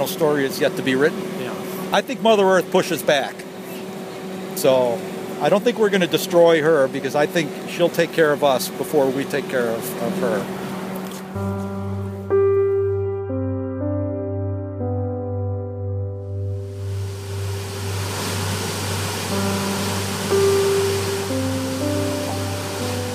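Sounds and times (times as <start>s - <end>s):
speech: 0.0s - 3.4s, 4.6s - 10.6s
soft music with a low sustained drone: 0.0s - 23.1s
waterfall rushing into a lake: 16.8s - 23.1s.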